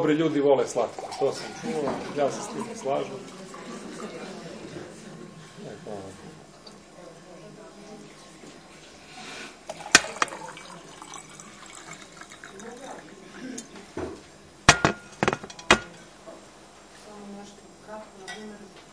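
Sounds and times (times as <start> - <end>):
speech: 0.0 - 3.5
faint murmur of voices: 1.1 - 8.7
glassware clinking: 9.7 - 13.0, 14.7 - 15.9
water poured into a drinking glass: 9.7 - 13.3.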